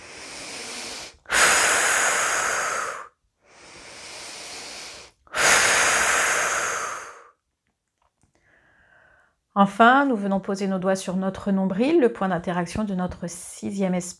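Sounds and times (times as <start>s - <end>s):
slow breathing during a guided relaxation exercise: 0.0s - 7.4s, 8.4s - 9.4s
speech: 9.6s - 14.1s.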